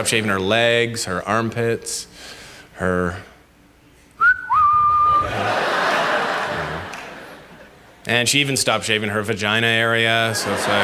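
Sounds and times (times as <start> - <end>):
speech: 0.0 - 3.3, 8.1 - 10.8
audience member giving a loud two-note whistle: 4.2 - 5.3
crowd laughing: 5.1 - 8.0, 10.2 - 10.8.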